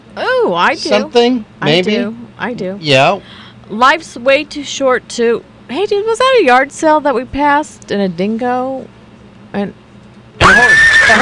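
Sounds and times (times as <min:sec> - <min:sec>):
speech: 0:00.2 - 0:09.8, 0:10.4 - 0:11.2
horse neighing: 0:10.4 - 0:11.2.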